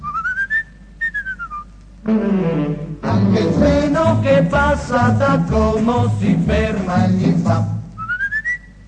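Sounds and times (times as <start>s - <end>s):
person whistling imitating a blackbird's song: 0.0s - 1.7s, 8.0s - 8.8s
speech: 2.0s - 7.8s.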